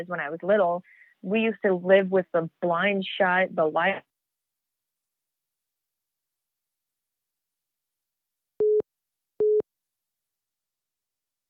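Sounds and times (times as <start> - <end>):
speech: 0.0 - 4.1
phone beeps as a call drops: 8.6 - 8.8, 9.4 - 9.6.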